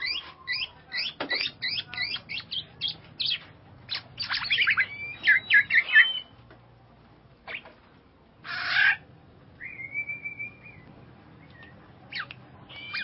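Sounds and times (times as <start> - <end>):
bird chirps: 0.0 - 6.4, 9.6 - 13.0.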